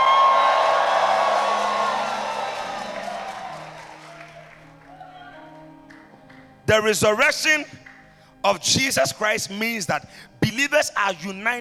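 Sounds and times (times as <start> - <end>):
large audience shouting and cheering during a sermon: 0.0 - 5.6
scattered whoops and yells: 0.0 - 5.6
speech: 6.7 - 7.8, 8.4 - 11.5.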